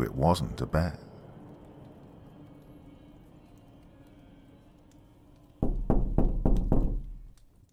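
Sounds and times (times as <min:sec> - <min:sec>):
speech: 0:00.0 - 0:01.1
heavy knocking on a wooden door: 0:05.6 - 0:07.3.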